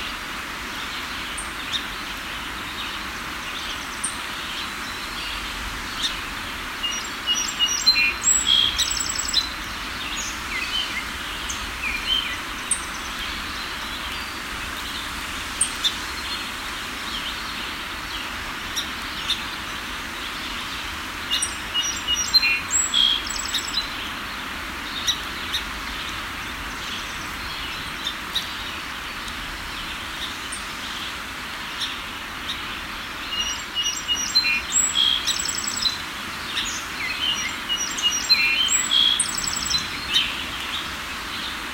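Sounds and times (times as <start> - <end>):
river water flowing on a riverbank in early morning: 0.0 - 41.7.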